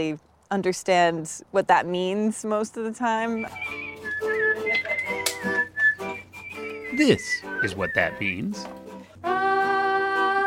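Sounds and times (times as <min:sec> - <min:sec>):
speech: 0:00.0 - 0:03.8, 0:07.0 - 0:08.8
musician whistling a melody: 0:03.4 - 0:08.6
soft musical backing: 0:03.4 - 0:10.4.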